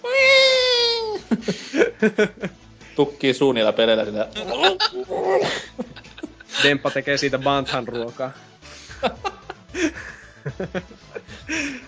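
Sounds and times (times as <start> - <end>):
voice mimicking a hungry child crying: 0.0 - 1.2, 4.4 - 5.5
laughter: 1.2 - 2.6, 4.3 - 11.8
speech: 1.3 - 5.9, 6.6 - 11.8.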